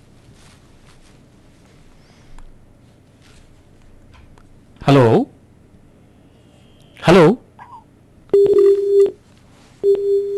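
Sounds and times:
speech: 4.8 - 5.3, 7.2 - 7.4
telephone line tones after a dropped call: 8.3 - 9.2, 9.8 - 10.3.

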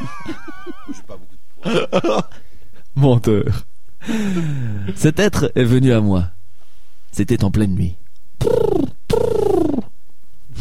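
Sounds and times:
speech: 1.7 - 2.4, 3.0 - 6.4, 7.1 - 8.8
human voice imitating a pigeon cooing: 8.4 - 9.9.

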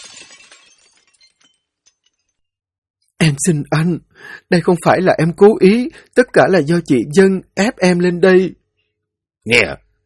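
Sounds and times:
water kettle thrown against a wall and shattering on the floor: 0.0 - 2.4
kettle fragments clinking and tinkling on the floor: 0.0 - 2.5
speech: 3.2 - 8.6, 9.4 - 9.8.

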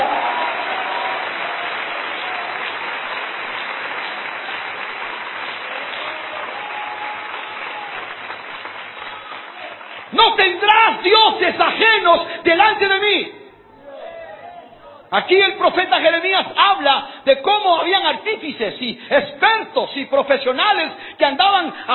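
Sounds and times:
church congregation applauding at an evening service: 0.0 - 12.1
speech: 10.5 - 13.4, 15.1 - 21.9.

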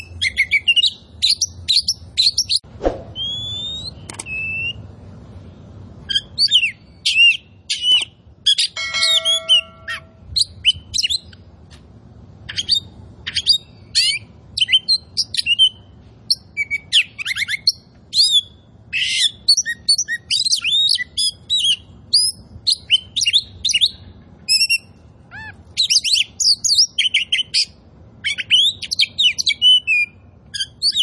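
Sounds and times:
Oriental magpie-robin singing: 0.0 - 2.6, 3.2 - 4.8, 6.0 - 11.4, 12.5 - 31.0.

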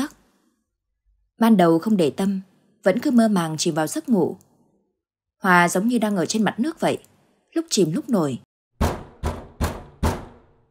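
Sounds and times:
speech: 1.4 - 4.5, 5.4 - 8.5
rapid urgent knocking on a window: 8.8 - 10.5.

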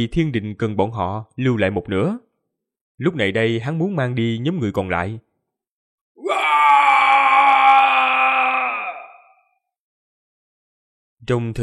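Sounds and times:
speech: 0.0 - 2.2, 3.0 - 5.3, 11.2 - 11.6
long howling roar from a village: 6.2 - 9.4.

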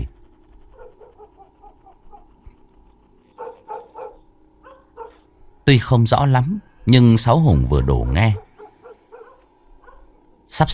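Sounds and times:
dog barking out on the main road: 0.7 - 2.4, 3.3 - 5.3, 7.7 - 10.2
speech: 5.7 - 8.4, 10.5 - 10.7.

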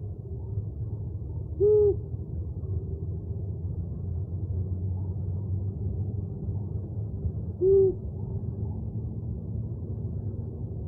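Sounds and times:
faint low rumble: 0.0 - 10.8
owl giving short low hoots: 1.6 - 2.0, 7.6 - 8.0.

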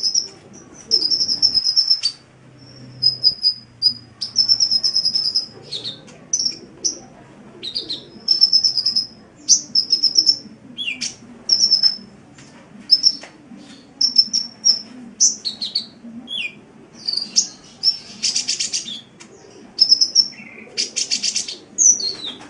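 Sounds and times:
Oriental magpie-robin song: 0.0 - 7.0, 7.6 - 12.1, 12.9 - 22.4.

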